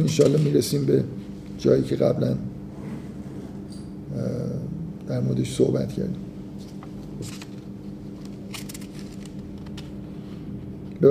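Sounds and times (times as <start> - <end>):
speech: 0.0 - 2.5, 4.2 - 6.2
low hum: 0.0 - 11.1
book pages turning: 6.7 - 10.0.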